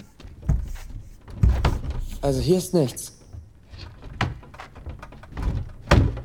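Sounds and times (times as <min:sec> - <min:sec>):
hollow knocking on wooden wall paneling: 0:00.2 - 0:02.2, 0:03.7 - 0:06.2
speech: 0:02.2 - 0:03.2.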